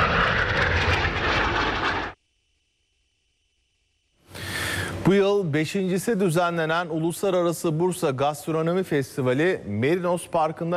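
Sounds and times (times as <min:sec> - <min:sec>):
jet aircraft roaring at an air show: 0:00.0 - 0:02.2
speech: 0:05.0 - 0:10.7.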